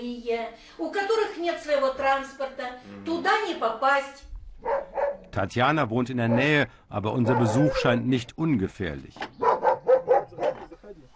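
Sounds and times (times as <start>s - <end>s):
speech: 0.0s - 4.8s, 5.4s - 9.4s
dog barking: 4.6s - 5.3s, 6.2s - 6.6s, 7.2s - 8.1s, 9.4s - 10.7s.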